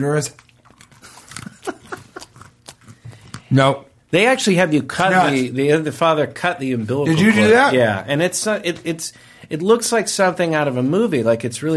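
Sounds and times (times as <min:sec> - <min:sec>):
speech: 0:00.0 - 0:00.5, 0:03.5 - 0:11.7
crunchy chewing of beer nuts: 0:00.3 - 0:03.5.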